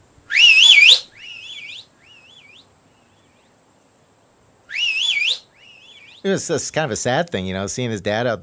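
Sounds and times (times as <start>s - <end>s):
person whistling a loud warbling call: 0.3s - 2.6s, 4.7s - 6.2s
speech: 6.2s - 8.4s.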